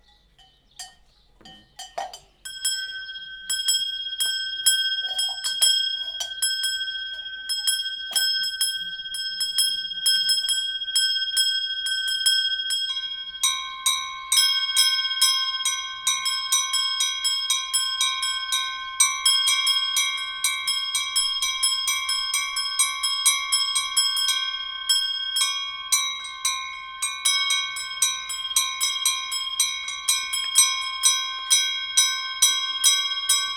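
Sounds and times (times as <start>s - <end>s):
small bell from Edeleny ringing: 0.0s - 33.5s.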